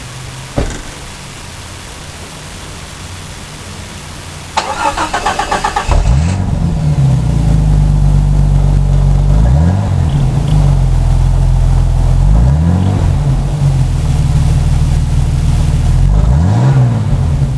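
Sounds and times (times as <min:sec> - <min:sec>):
Jeep engine with muffler starting idling and revving at 5ft away: 0:00.0 - 0:17.5
Jeep door slamming: 0:00.6 - 0:01.1.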